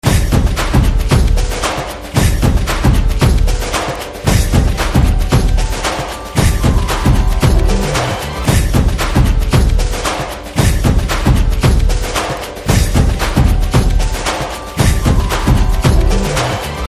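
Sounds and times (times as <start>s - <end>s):
background music drum beats: 0.0s - 16.8s.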